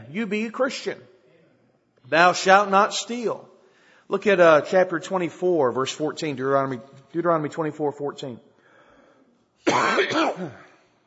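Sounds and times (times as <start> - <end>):
speech: 0.1 - 1.1, 2.1 - 3.5, 4.1 - 8.5, 9.6 - 10.6
person reading scripture aloud coughing: 9.7 - 10.8.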